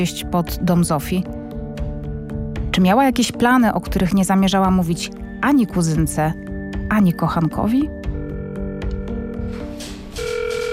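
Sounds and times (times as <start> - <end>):
speech: 0.0 - 1.4, 2.8 - 8.0
telephone ringing in a dispatch office: 8.2 - 10.7.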